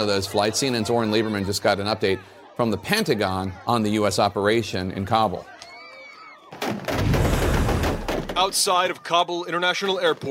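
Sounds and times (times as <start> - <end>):
speech: 0.0 - 5.5, 8.4 - 10.2
heavy gunfire bursts: 6.9 - 8.4.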